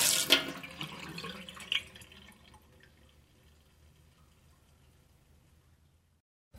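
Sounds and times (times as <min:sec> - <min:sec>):
water flowing from tap into metal sink: 0:00.2 - 0:02.9.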